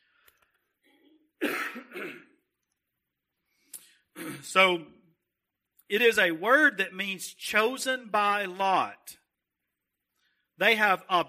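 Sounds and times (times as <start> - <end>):
harsh coughs: 0.9 - 2.4, 4.2 - 4.6
person clearing throat: 0.9 - 2.4, 4.2 - 4.6
speech: 4.4 - 5.0, 5.9 - 9.2, 10.6 - 11.2.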